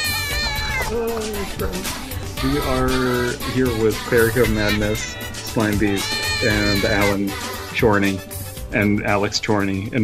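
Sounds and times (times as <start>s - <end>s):
cat screeching: 0.0s - 2.8s, 4.3s - 7.8s
speech: 0.9s - 10.0s.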